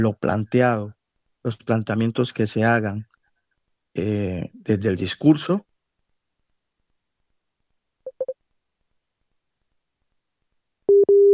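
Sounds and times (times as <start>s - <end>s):
speech: 0.0s - 3.1s, 4.0s - 5.7s
telephone busy tone after a call is cut off: 10.9s - 11.3s.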